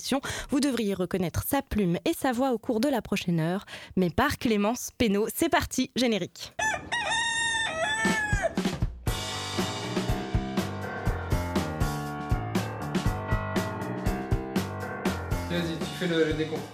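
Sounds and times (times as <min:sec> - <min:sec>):
speech: 0:00.1 - 0:07.0, 0:15.6 - 0:16.7
rooster crowing: 0:06.6 - 0:08.7
loud rhythmic music with a steady thumping beat: 0:08.3 - 0:16.7.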